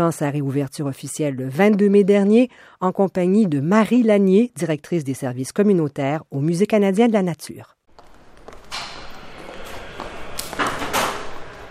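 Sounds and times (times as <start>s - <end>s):
speech: 0.0s - 7.8s
footsteps in museum vestibule: 7.9s - 11.6s
heavy oak museum doors opening and closing: 8.0s - 11.6s.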